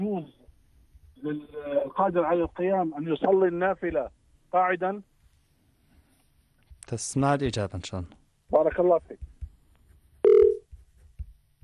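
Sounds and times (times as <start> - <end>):
speech: 0.0 - 0.4, 1.2 - 5.1, 6.9 - 9.3
telephone tone on a call-in phone line: 10.2 - 10.6.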